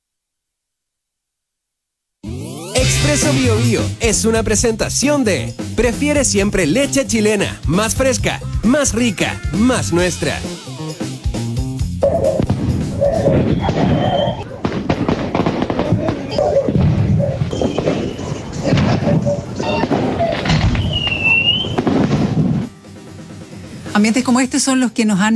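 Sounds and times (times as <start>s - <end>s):
speech: 2.8s - 10.7s, 13.3s - 14.4s, 24.0s - 25.3s
whistling firework rockets rising: 12.0s - 22.8s
fireworks bursting in loud cracks and booms: 12.0s - 23.9s.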